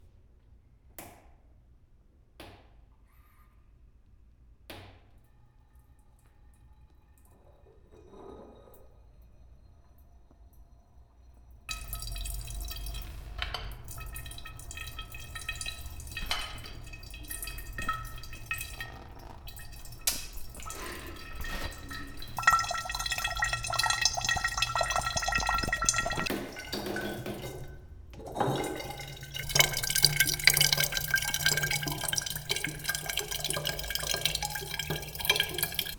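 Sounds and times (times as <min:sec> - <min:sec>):
water pouring into a bottle: 0:11.7 - 0:35.9.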